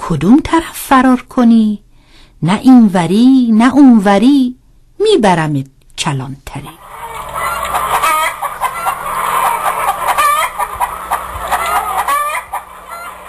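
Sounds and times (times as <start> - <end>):
speech: 0.1 - 1.8, 2.4 - 6.8
several hens clucking: 6.8 - 13.2
faint crow-like call: 6.9 - 13.2.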